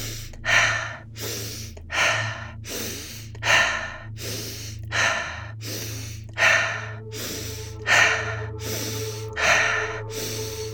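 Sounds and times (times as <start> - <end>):
low constant hum: 0.0 - 10.7
rapid breathing in through the nose and out through the mouth: 0.0 - 10.7.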